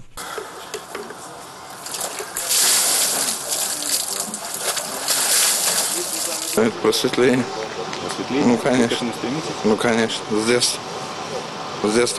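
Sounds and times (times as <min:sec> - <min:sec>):
water splashing as someone plunges into a large wooden tub for Epiphany bathing: 0:01.7 - 0:06.6
speech: 0:06.6 - 0:07.6, 0:08.2 - 0:11.0, 0:11.8 - 0:12.1.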